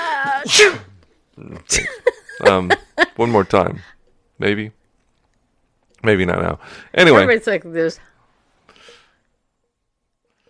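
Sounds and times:
loud sneeze with voiced wind-up: 0.0 - 1.0
speech: 0.4 - 4.8, 6.0 - 8.1.

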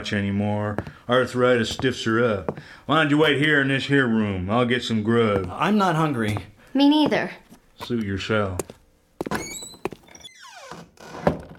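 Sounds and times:
speech: 0.0 - 9.4
door creaking on hinges: 9.2 - 11.5.

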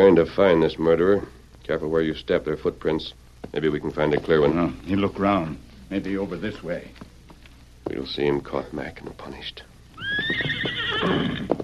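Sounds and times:
speech: 0.0 - 7.1, 7.8 - 11.3
horse giving a long shrill whinny: 10.0 - 11.6.

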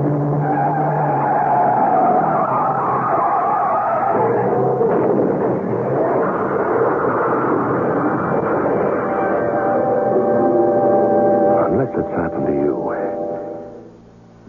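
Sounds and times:
tires skidding and screeching: 0.0 - 11.4
engine roar in fairly heavy traffic: 0.0 - 13.4.

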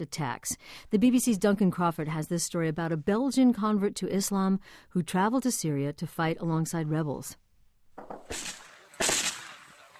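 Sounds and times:
speech: 0.0 - 7.4
gunfire bursts from an online video of rebel fighters in Syria: 8.2 - 9.9.

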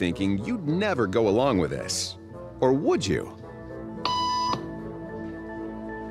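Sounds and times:
speech: 0.0 - 3.4
electronic beep tone in a hidden camera conformity experiment: 4.1 - 4.7.

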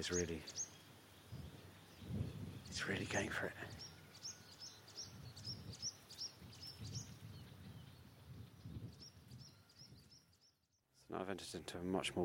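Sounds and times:
speech: 0.0 - 0.6, 2.8 - 3.9, 11.1 - 12.2
chorus of reed warblers singing: 0.0 - 10.7.

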